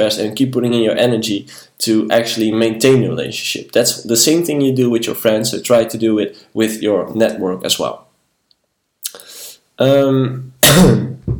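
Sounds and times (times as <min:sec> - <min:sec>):
speech: 0:00.0 - 0:08.0, 0:09.8 - 0:11.2
loud coughing: 0:10.6 - 0:11.3
strained voiced throat-clearing hack: 0:10.6 - 0:11.3.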